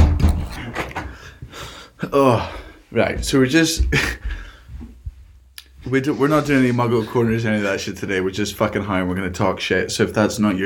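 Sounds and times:
door being shut: 0.0s - 1.1s
speech: 2.1s - 4.4s, 5.9s - 10.6s.

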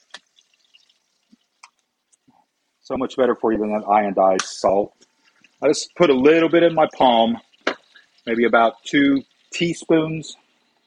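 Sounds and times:
hot grease popping and crackling in a fryer: 0.0s - 2.7s, 4.3s - 10.8s
faint steady sizzle of potatoes frying in a fryer basket: 0.0s - 10.8s
speech: 2.9s - 5.0s, 5.6s - 7.5s, 8.2s - 10.4s.

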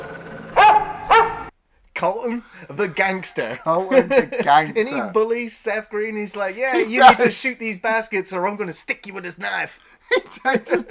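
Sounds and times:
dog barking: 0.6s - 1.5s
speech: 2.0s - 10.8s
laughter: 2.8s - 5.2s, 6.6s - 7.4s, 10.1s - 10.8s.

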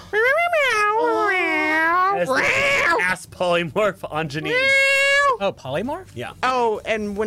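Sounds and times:
person imitating a cat meowing: 0.2s - 3.1s, 4.4s - 5.4s
speech: 2.2s - 7.2s.

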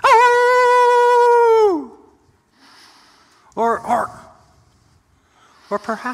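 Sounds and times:
person imitating a coyote howl: 0.0s - 2.0s
speech: 5.8s - 6.1s.

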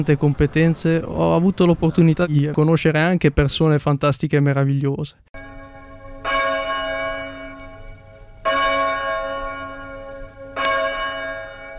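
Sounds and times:
speech: 0.0s - 5.6s
church bell near a town hall ringing: 5.4s - 11.7s.

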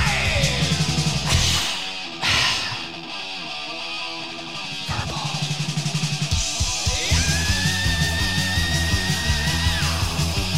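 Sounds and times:
metal singer's harsh high sustained vocal scream: 0.0s - 3.2s, 4.8s - 5.7s, 6.6s - 10.5s
heavy metal song with pounding drums and distorted guitars: 0.0s - 10.5s.

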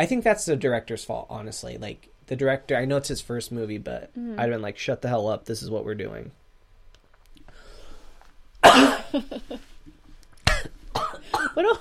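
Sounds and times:
speech: 0.0s - 6.4s, 8.7s - 9.7s, 11.6s - 11.7s
person coughing: 8.6s - 9.4s, 10.5s - 11.7s.

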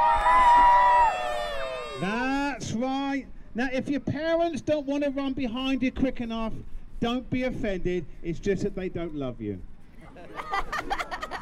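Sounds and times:
crowd of children cheering: 0.0s - 2.2s
speech: 3.2s - 9.7s
laughter: 10.0s - 11.4s.

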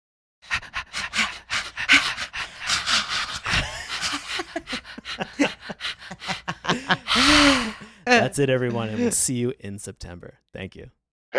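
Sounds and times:
people imitating dog panting: 0.4s - 9.2s
person laughing: 0.6s - 9.4s
speech: 8.1s - 11.3s.

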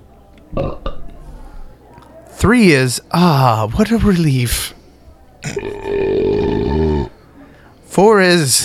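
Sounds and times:
speech: 2.4s - 4.8s, 8.0s - 8.6s
belch: 5.4s - 7.2s.

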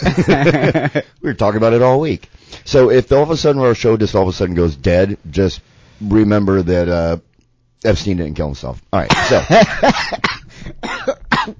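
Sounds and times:
speech: 0.2s - 11.5s
person coughing and choking on saliva: 9.1s - 11.5s.

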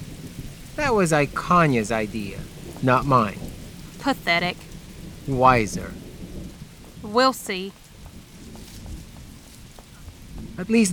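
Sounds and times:
steady rain hiss: 0.0s - 10.9s
speech: 0.8s - 3.4s, 4.0s - 4.7s, 5.3s - 6.0s, 7.0s - 7.8s, 10.6s - 10.9s.

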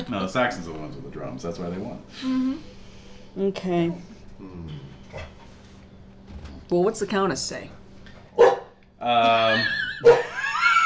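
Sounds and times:
speech: 0.1s - 2.8s, 3.4s - 5.4s, 6.7s - 7.8s, 9.0s - 10.3s
dog barking: 8.4s - 8.8s, 10.0s - 10.3s.

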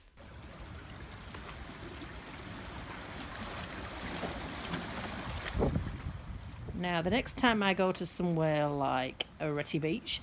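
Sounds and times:
soft wind: 0.0s - 10.2s
incoming tide lapping against rocks at a rocky inlet shoreline: 0.1s - 6.8s
speech: 6.8s - 10.2s.

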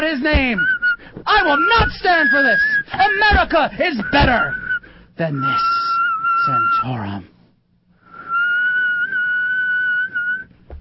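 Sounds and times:
speech: 0.0s - 4.6s, 5.2s - 5.8s, 6.4s - 7.3s
person whistling one long steady note: 0.5s - 1.6s, 2.2s - 2.9s, 4.0s - 7.0s, 8.0s - 10.5s.

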